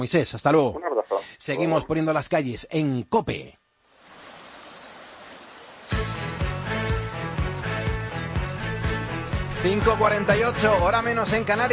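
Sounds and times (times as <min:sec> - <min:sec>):
speech: 0:00.0 - 0:03.6, 0:09.6 - 0:11.7
wren singing high rapid trills: 0:03.7 - 0:11.7
music bed with a pulsing low beat: 0:05.9 - 0:11.7.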